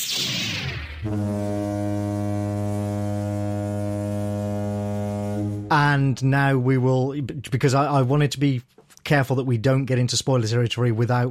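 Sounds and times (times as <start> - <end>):
noisy whoosh: 0.0 - 1.1
speech: 1.0 - 1.4, 5.7 - 11.2
deep blaring horn blast sounded as a spoiler warning: 1.0 - 6.6.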